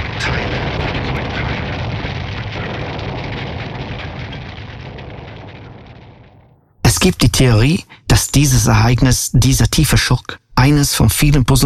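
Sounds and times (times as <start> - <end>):
roar of burning aircraft wreckage in a field: 0.0 - 6.8
burning aircraft wreckage crackling: 0.0 - 8.9
deep rumble of burning aircraft wreckage: 0.0 - 9.0
speech: 7.0 - 11.6.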